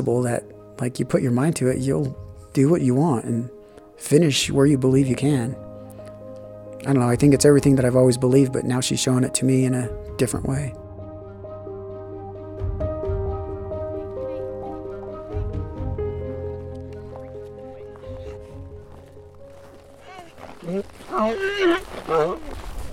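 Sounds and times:
speech: 0.0s - 5.6s, 6.8s - 10.8s
steady tonal backdrop: 0.0s - 21.4s
donkeys in a pasture braying: 14.0s - 22.9s
donkeys thudding and shuffling while crowding around: 16.5s - 22.9s.

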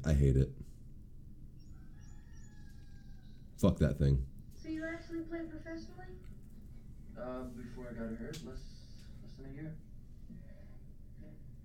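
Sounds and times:
speech: 0.0s - 0.7s, 3.6s - 4.3s, 5.0s - 6.3s, 7.2s - 8.8s, 9.4s - 10.4s
low rumbling noise: 0.0s - 11.6s
rooster crowing: 1.6s - 3.6s.

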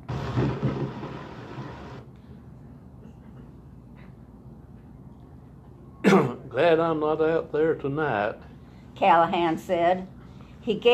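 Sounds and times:
rolling thunder: 0.0s - 2.0s
steady rain hiss: 0.0s - 2.0s
speech: 6.5s - 10.9s.

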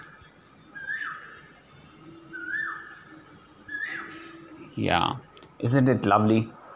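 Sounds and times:
Asian koel singing rising whistled calls: 0.0s - 1.5s, 2.2s - 4.6s
speech: 4.8s - 6.6s.

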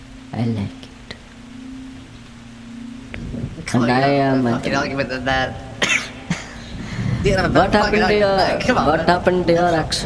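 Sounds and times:
speech: 0.4s - 0.9s, 3.7s - 5.7s, 7.2s - 10.0s
person coughing: 5.8s - 6.8s.

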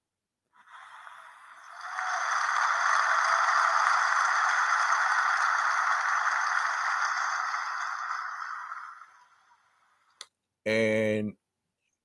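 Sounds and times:
applause: 0.8s - 9.6s
speech: 10.7s - 11.4s.

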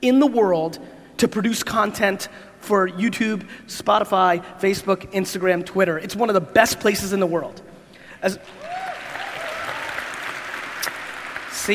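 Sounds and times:
speech: 0.0s - 8.6s
steady hiss: 0.0s - 11.7s
person clapping hands: 9.1s - 11.6s.

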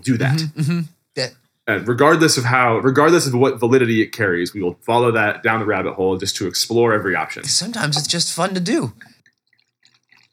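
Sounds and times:
speech: 0.0s - 9.2s
wine pouring into a glass: 5.2s - 10.3s.

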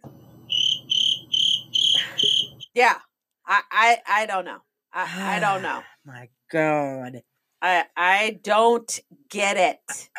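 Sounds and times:
crickets chirping: 0.4s - 2.7s
speech: 2.8s - 10.1s.

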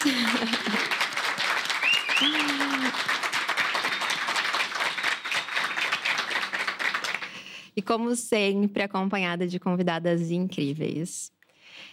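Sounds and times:
laughter: 0.0s - 1.3s, 2.2s - 3.1s
audience applause: 0.0s - 7.5s
whistle or cheer: 1.8s - 2.9s, 4.8s - 5.8s
speech: 7.8s - 11.4s.

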